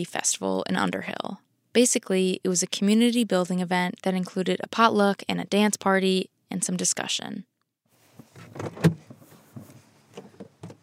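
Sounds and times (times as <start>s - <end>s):
speech: 0.0s - 7.5s, 8.6s - 9.1s
rustling and shuffling of someone climbing out of a car: 7.9s - 10.8s
solid car door clunk: 8.2s - 10.8s.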